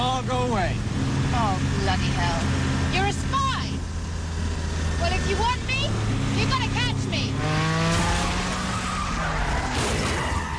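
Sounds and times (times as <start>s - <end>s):
racing engine roaring: 0.0s - 10.5s
speech: 0.7s - 3.4s, 5.0s - 6.8s
tires squealing and skidding: 4.8s - 10.5s.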